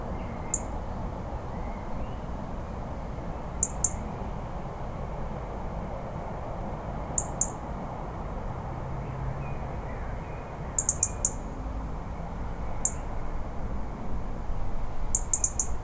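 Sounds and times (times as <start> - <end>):
low rumbling background noise: 0.0 - 15.8
European robin giving short sharp high ticking calls: 0.4 - 0.8, 3.6 - 4.0, 7.2 - 7.6, 10.8 - 11.5, 12.8 - 13.1, 15.1 - 15.8.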